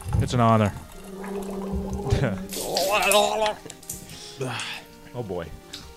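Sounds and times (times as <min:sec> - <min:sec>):
water dripping: 0:00.0 - 0:04.7
speech: 0:00.2 - 0:01.4, 0:02.2 - 0:03.7, 0:04.4 - 0:05.6
person gargling water: 0:00.6 - 0:03.8.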